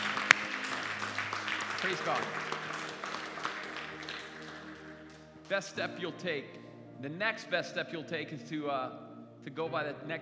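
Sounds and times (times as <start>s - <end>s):
audience applauding with many hands clapping: 0.0s - 5.8s
speech: 1.8s - 2.7s, 5.5s - 10.2s.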